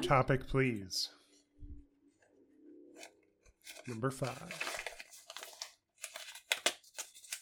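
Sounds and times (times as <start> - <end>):
speech: 0.0 - 1.2, 3.7 - 4.8
folded paper sticky note crinkling as it is pried open: 3.0 - 7.3.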